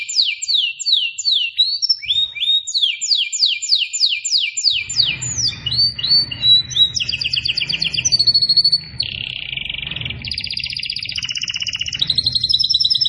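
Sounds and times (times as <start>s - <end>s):
canary singing vigorously: 0.0s - 13.0s
low hum: 4.8s - 13.0s.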